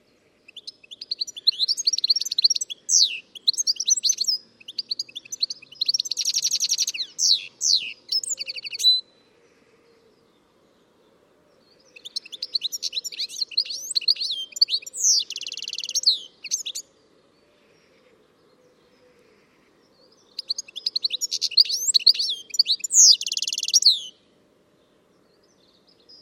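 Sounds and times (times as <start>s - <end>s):
bird chirping and twittering: 0.5s - 9.1s, 11.9s - 16.9s, 20.2s - 24.2s.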